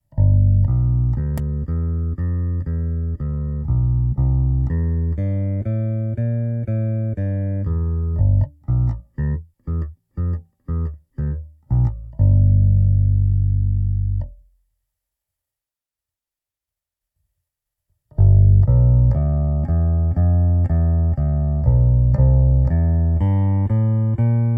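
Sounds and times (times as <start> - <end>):
Ibanez SRX 700 bass guitar simulation: 0.0 - 14.6, 18.1 - 24.5.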